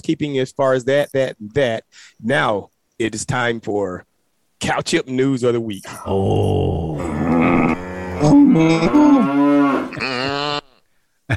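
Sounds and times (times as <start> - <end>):
speech: 0.0 - 10.4
cows mooing: 7.0 - 10.8.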